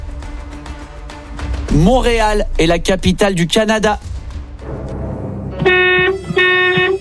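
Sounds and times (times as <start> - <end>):
speech: 1.7 - 4.1
car horn blasts: 5.6 - 7.0.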